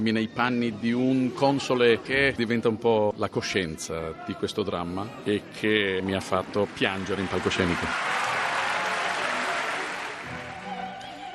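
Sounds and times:
speech: 0:00.0 - 0:08.3
large theatre audience applause: 0:06.1 - 0:11.0.

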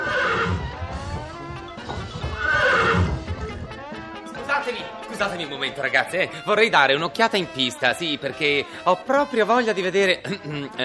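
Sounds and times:
white horse whinnying: 0:00.0 - 0:04.3
horse hooves clip-clopping: 0:00.0 - 0:04.5
speech: 0:05.2 - 0:10.8.

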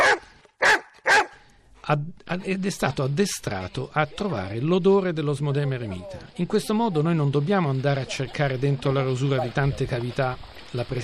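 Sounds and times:
golden retriever barking: 0:00.0 - 0:01.4
speech: 0:01.9 - 0:11.0.

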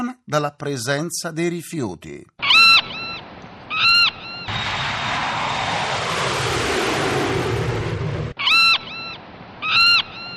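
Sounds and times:
speech: 0:00.0 - 0:02.4
loud seagull cries: 0:02.4 - 0:04.5, 0:08.4 - 0:10.3
steady roaring noise: 0:04.5 - 0:08.4.

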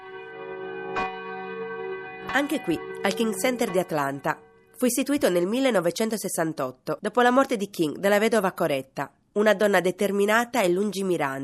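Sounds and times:
church bells ringing together: 0:00.0 - 0:04.7
speech: 0:02.3 - 0:11.4.

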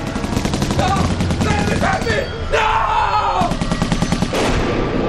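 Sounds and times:
rapid burst of gunfire: 0:00.0 - 0:02.2, 0:03.4 - 0:04.9.

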